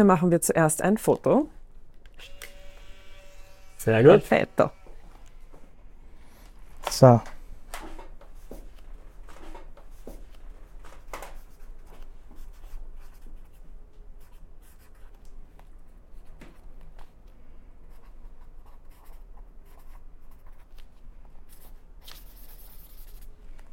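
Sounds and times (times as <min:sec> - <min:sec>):
speech: 0:00.0 - 0:01.6, 0:03.8 - 0:04.8, 0:06.8 - 0:07.3
pen scratching on paper writing a guestbook entry: 0:12.4 - 0:13.6, 0:14.2 - 0:15.2, 0:17.9 - 0:20.8, 0:21.5 - 0:23.3.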